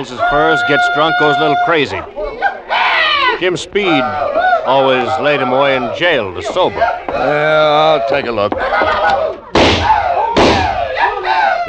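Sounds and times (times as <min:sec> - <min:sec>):
speech: 0:00.0 - 0:02.4, 0:03.4 - 0:09.4
laughter: 0:00.0 - 0:11.6
gunshots from an old trapper's gun: 0:09.0 - 0:10.9.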